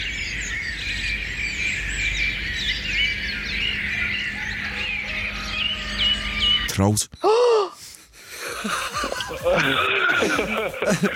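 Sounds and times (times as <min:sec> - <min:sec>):
dense chorus of birdsong: 0:00.0 - 0:11.1
speech: 0:06.8 - 0:07.4, 0:09.5 - 0:11.1
laughter: 0:08.3 - 0:11.1.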